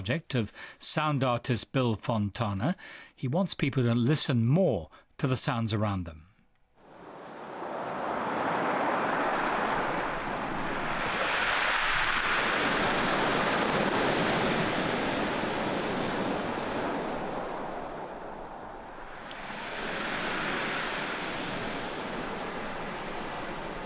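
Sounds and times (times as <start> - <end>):
speech: 0.0 - 6.3
waves breaking on a pebble beach on England's south coast: 6.8 - 23.8.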